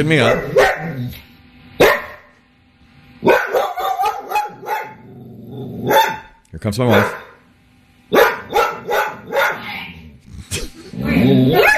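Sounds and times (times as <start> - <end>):
speech: 0.0 - 1.2, 6.6 - 7.3
dog barking: 0.2 - 1.0, 1.8 - 2.3, 3.2 - 5.0, 5.8 - 6.3, 6.9 - 7.4, 8.1 - 9.8, 11.5 - 11.7.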